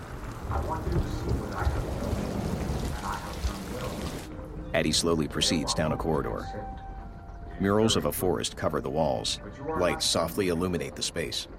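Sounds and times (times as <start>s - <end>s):
heavy rain downpour: 0.0s - 4.3s
low thunder rumbling: 0.0s - 4.3s
speech: 4.8s - 6.9s, 7.6s - 11.5s.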